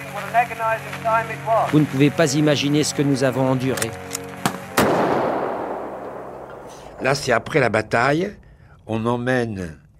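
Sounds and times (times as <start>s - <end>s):
speech: 0.2s - 4.2s, 7.0s - 9.8s
heavy cannon blasts during a First World War battle on the Somme: 4.8s - 7.2s.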